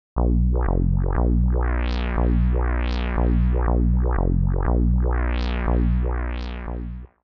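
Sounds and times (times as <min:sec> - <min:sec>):
mono song pattern: 0:00.2 - 0:07.1.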